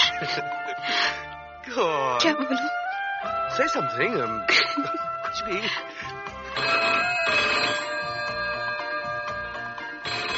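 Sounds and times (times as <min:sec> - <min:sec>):
speech: 0:00.2 - 0:00.6, 0:01.7 - 0:07.9
telephone ringing with a bright electronic trill: 0:06.4 - 0:10.3.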